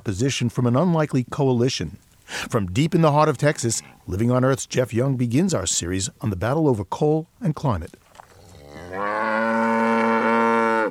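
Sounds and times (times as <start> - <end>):
speech: 0.0 - 8.0
Brangus cattle mooing in a dry pasture: 2.9 - 4.3, 8.2 - 10.8.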